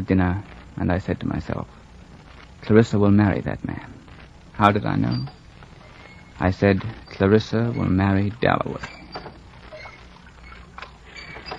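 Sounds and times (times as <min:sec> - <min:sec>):
speech: 0:00.0 - 0:01.8, 0:02.6 - 0:04.0, 0:04.6 - 0:05.4, 0:06.4 - 0:09.0
wooden oarlocks creaking and knocking: 0:04.9 - 0:11.5.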